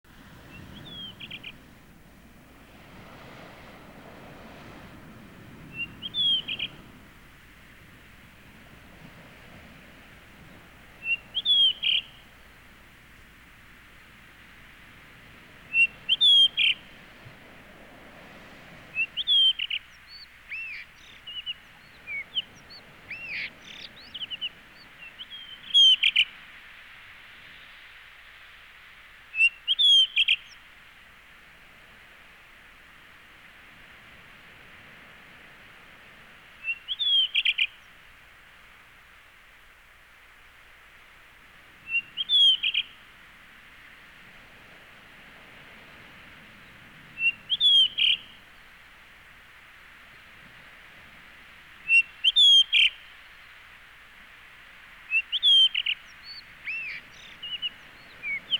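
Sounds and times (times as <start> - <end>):
blue rock thrush calling from trees or utility poles: 0.2 - 2.0, 3.3 - 14.2, 15.2 - 26.6, 29.3 - 30.8, 36.2 - 38.1, 41.7 - 43.2, 46.3 - 48.8, 50.1 - 58.5.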